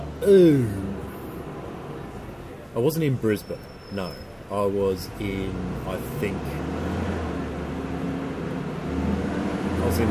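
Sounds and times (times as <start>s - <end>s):
garbage truck engine rumble driving past: 0.0s - 10.1s
road noise: 0.0s - 10.1s
speech: 0.2s - 0.8s, 2.8s - 6.8s, 9.8s - 10.1s.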